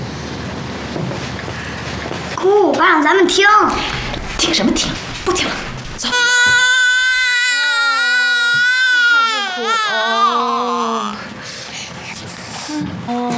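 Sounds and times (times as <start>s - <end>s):
speech: 2.4s - 6.6s, 9.8s - 11.2s
baby crying in a sustained wail: 6.0s - 11.2s.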